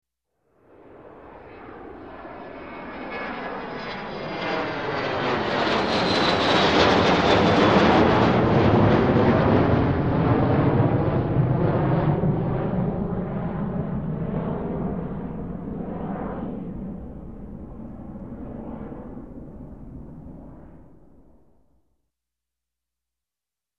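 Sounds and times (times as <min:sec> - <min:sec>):
jet aircraft taking off: 0:00.6 - 0:21.3.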